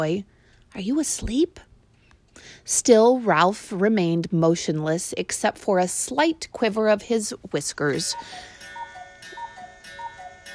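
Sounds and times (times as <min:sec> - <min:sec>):
speech: 0:00.0 - 0:01.7, 0:02.4 - 0:08.5
cuckoo clock ticking: 0:08.1 - 0:10.5.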